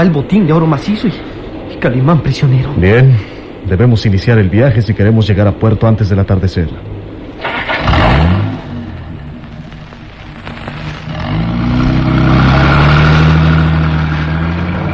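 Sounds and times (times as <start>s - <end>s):
speech: 0.0s - 8.1s
car engine starting and revving: 7.3s - 14.9s.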